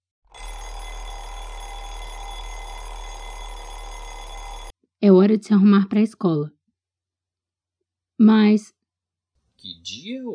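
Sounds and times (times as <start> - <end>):
alarm clock ringing with a metallic jangle: 0.3 - 4.7
speech: 5.0 - 6.6, 8.2 - 8.8, 9.6 - 10.3.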